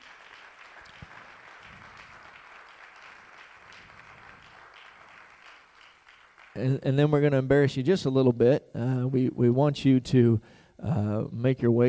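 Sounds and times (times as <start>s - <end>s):
large indoor crowd applauding fathers: 0.0s - 7.2s
speech: 6.6s - 11.8s.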